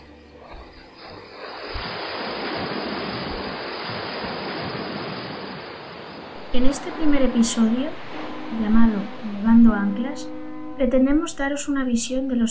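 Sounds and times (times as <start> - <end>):
sea waves crashing against a rocky shore: 0.5 - 9.7
speech: 6.6 - 12.4.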